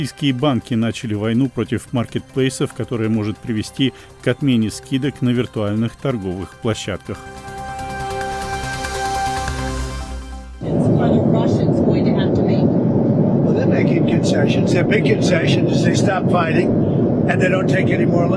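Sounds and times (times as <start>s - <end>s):
speech: 0.0s - 7.5s, 14.5s - 18.3s
aircraft engines roaring in the cabin of the US presidential plane: 6.0s - 18.3s
tonal passage: 7.2s - 18.3s.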